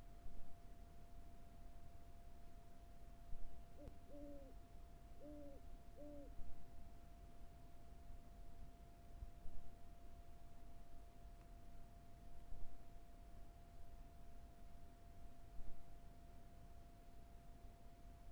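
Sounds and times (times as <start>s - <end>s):
steady faint hum: 0.1s - 18.3s
owl hooting on the Carrizo Plain: 3.8s - 4.6s, 5.2s - 6.4s.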